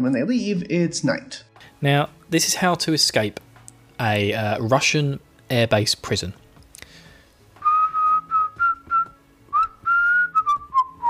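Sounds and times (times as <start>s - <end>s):
speech: 0.0s - 6.4s
person whistling a short melody: 7.6s - 11.0s.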